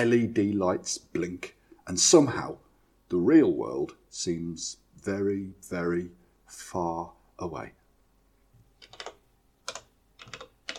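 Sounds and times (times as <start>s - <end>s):
speech: 0.0s - 7.8s
fingers tapping buttons on a lighting control desk in a theatre control room: 8.7s - 10.7s.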